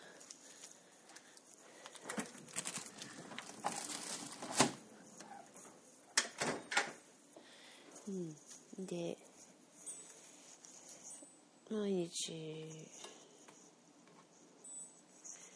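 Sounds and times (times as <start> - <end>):
grocery bags rustling while groceries are unpacked: 1.8 - 4.9
speech: 8.1 - 9.3, 11.7 - 13.1.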